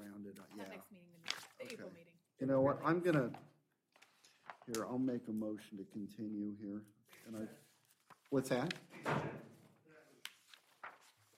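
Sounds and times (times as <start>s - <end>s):
speech: 1.7s - 3.5s, 4.7s - 7.6s, 8.3s - 9.4s
loud door slam with echo during a meeting: 8.9s - 9.5s.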